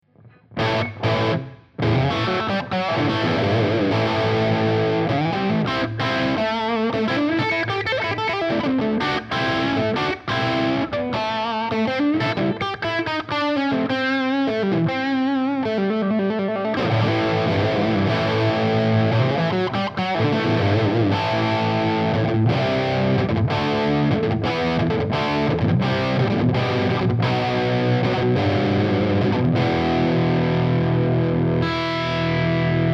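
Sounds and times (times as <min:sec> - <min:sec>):
50 W lead amplifier tone: 0:00.0 - 0:32.9.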